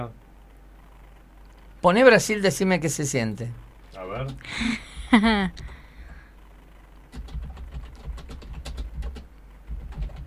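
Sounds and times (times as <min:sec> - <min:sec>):
speech: 0:00.0 - 0:00.2, 0:01.8 - 0:05.7
low hum: 0:00.0 - 0:10.2
laughter: 0:04.5 - 0:05.6
keyboard typing clicks: 0:07.1 - 0:10.2.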